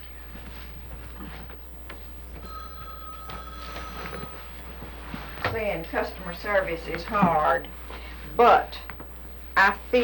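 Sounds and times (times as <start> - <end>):
low constant hum: 0.0 - 10.0
telephone ringing with a steady electronic tone: 2.4 - 6.2
speech: 5.6 - 7.8, 8.4 - 8.8, 9.6 - 10.0.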